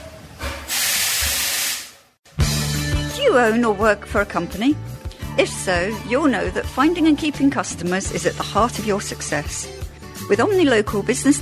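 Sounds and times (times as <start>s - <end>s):
steam locomotive hissing on a heritage steam railway at a steam museum: 0.5s - 2.0s
speech: 3.3s - 11.4s.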